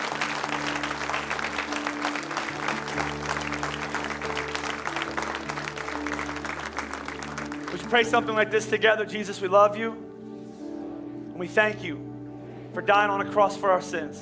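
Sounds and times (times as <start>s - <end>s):
audience clapping: 0.0s - 8.8s
low sustained hum of music or organ: 0.0s - 14.2s
speech: 7.9s - 10.0s, 11.4s - 12.1s, 12.8s - 14.2s.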